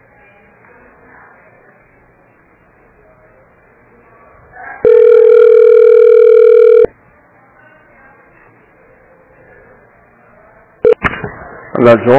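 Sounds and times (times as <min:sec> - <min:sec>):
faint murmur on a telephone line: 0:00.0 - 0:12.1
loud steady electronic telephone call transfer tone: 0:04.8 - 0:06.9
speech: 0:11.8 - 0:12.1.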